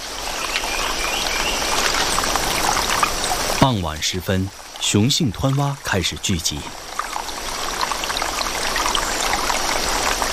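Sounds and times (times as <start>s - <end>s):
rainforest stream water rushing after heavy rain: 0.0s - 10.3s
speech: 3.6s - 6.8s.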